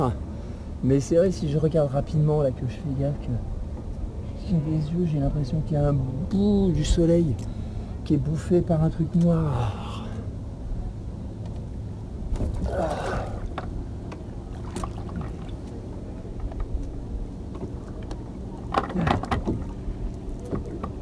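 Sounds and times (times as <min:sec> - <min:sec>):
speech: 0:00.0 - 0:00.2, 0:00.8 - 0:03.5, 0:04.4 - 0:10.0
low rumble of a passing boat: 0:00.0 - 0:21.0
water sloshing and splashing from a boat wake: 0:12.0 - 0:21.0.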